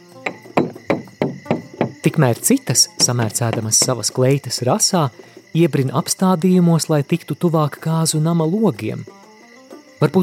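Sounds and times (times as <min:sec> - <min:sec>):
loud firm knocking on a wooden door: 0:00.2 - 0:02.2, 0:03.0 - 0:04.2
speech: 0:02.0 - 0:09.2, 0:10.0 - 0:10.2.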